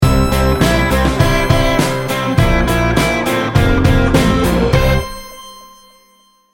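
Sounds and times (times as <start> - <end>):
laidback indie rock sting bumper: 0.2 - 5.2.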